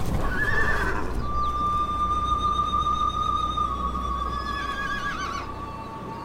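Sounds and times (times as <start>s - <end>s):
horses galloping past: 0.0s - 5.5s
horses neighing and whinnying: 0.2s - 1.8s, 4.1s - 5.6s.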